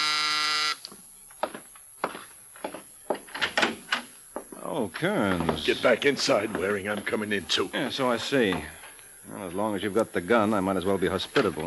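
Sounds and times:
loud harsh apartment door buzzer: 0.0s - 0.9s
speech: 4.7s - 11.6s.

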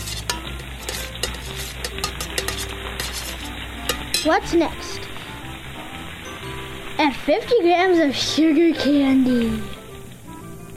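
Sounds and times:
utensil scraping and tapping a pan while stirring melted butter: 0.0s - 4.4s
melted butter bubbling and sizzling in a pan: 0.0s - 10.7s
speech: 4.2s - 5.0s, 7.0s - 9.8s.

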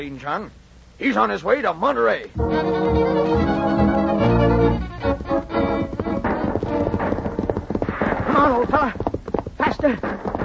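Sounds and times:
speech: 0.0s - 3.4s, 8.4s - 9.0s, 9.8s - 10.3s
many horses' hooves galloping: 3.3s - 10.4s.

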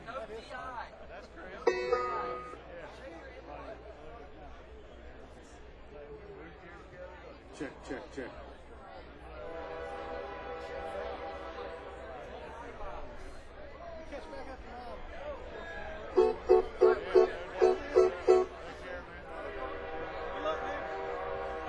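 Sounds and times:
crowd murmur: 1.0s - 21.6s
train horn blasts: 1.7s - 2.6s, 9.4s - 11.8s, 16.2s - 18.6s, 19.6s - 21.6s
speech: 7.6s - 8.5s.

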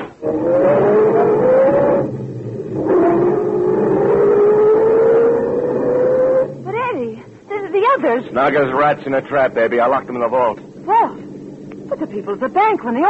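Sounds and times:
sedan engine accelerating as the car drives off: 0.0s - 13.0s
speech: 8.2s - 11.2s, 12.0s - 13.0s.

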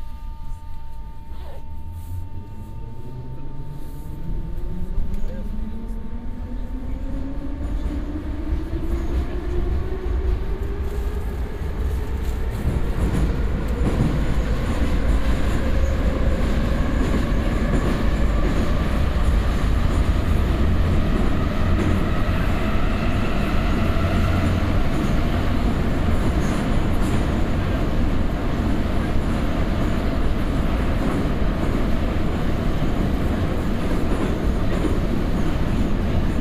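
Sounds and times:
metro train running between stations, low rumble: 0.0s - 36.3s
metro train motor whine rising in pitch: 1.7s - 6.8s.

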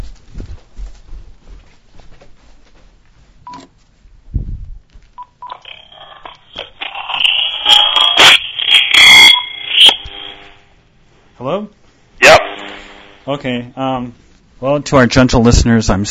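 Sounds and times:
thin electronic low-battery warning beeps from a phone: 5.2s - 10.6s
speech: 13.3s - 16.0s.

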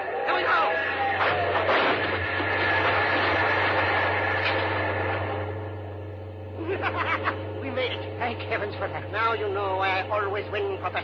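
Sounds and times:
loud steady mechanical roar with a deep droning hum: 0.0s - 11.0s
laughter: 6.6s - 7.6s
speech: 8.7s - 11.0s.

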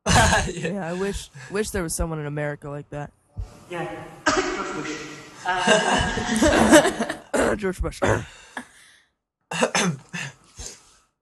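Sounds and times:
person clearing throat: 0.0s - 0.7s, 4.2s - 5.0s, 5.8s - 8.4s, 9.5s - 10.3s
laughter: 0.0s - 0.8s, 4.8s - 7.4s
person coughing: 0.1s - 1.1s, 5.6s - 8.5s, 9.5s - 10.3s
speech: 0.4s - 8.4s, 9.5s - 10.3s.

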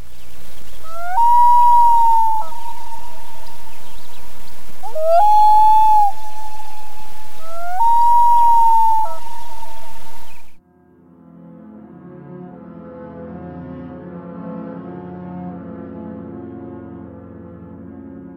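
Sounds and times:
soft rain-like hiss: 0.0s - 10.6s
loon wailing cry: 0.8s - 10.5s.

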